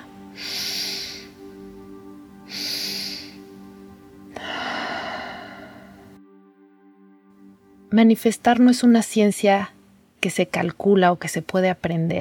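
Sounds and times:
person inhaling and exhaling during a guided breathing exercise: 0.2s - 1.6s, 2.5s - 6.2s
speech: 8.0s - 12.2s.

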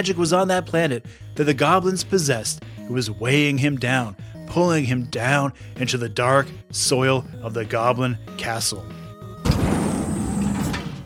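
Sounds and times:
speech: 0.0s - 9.0s
giant heavy door bursting open: 9.4s - 11.0s.

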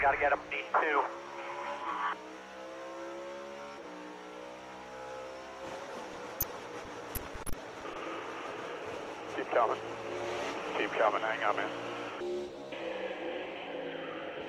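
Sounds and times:
speech: 0.0s - 1.3s, 9.5s - 10.2s, 10.8s - 12.0s
race car engine roaring on board: 0.0s - 14.4s.

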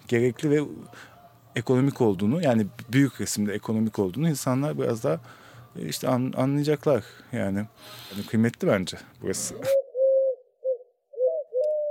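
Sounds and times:
speech: 0.1s - 9.8s
turtle dove cooing: 9.4s - 11.8s.

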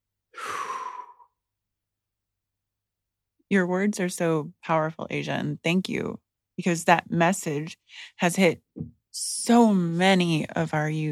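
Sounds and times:
deep breath in and exhale: 0.3s - 1.3s
speech: 3.5s - 11.1s.

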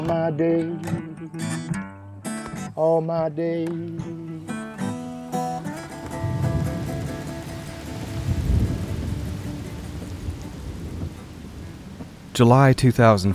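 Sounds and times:
speech: 0.0s - 1.8s, 2.8s - 4.2s, 12.4s - 13.3s
heavy downpour: 5.3s - 13.2s
low thunder rolling: 6.1s - 12.4s.

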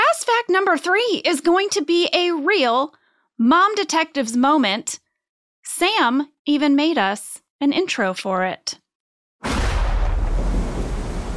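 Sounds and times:
speech: 0.6s - 5.0s, 5.7s - 8.8s
sudden loud thunder crack: 9.4s - 11.3s.

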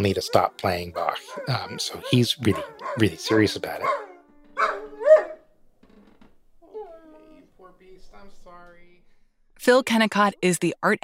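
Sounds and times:
speech: 0.0s - 4.0s, 9.6s - 11.0s
dog barking: 0.0s - 5.4s.

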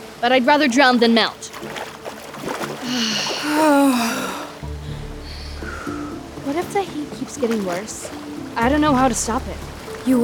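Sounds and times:
churning rushing water: 0.0s - 10.2s
speech: 0.2s - 1.5s, 2.9s - 4.2s, 6.5s - 10.2s
splash of someone diving into water on a hot morning at sunrise: 1.5s - 3.6s
person letting out a drawn-out exclamation: 3.4s - 4.5s.

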